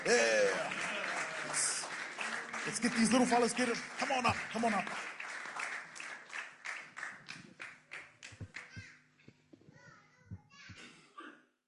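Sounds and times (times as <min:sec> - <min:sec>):
crowd applause: 0:00.0 - 0:08.8
speech: 0:02.6 - 0:05.1.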